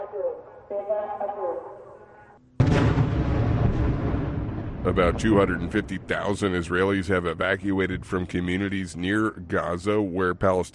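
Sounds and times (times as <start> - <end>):
speech: 0.7 - 1.8, 4.8 - 10.7
explosion bangs in southern Israel: 2.6 - 7.8.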